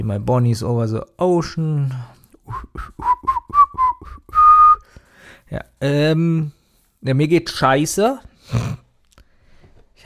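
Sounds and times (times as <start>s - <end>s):
speech: 0.0s - 3.1s, 5.5s - 8.8s
person whistling a cheerful tune: 2.4s - 5.0s.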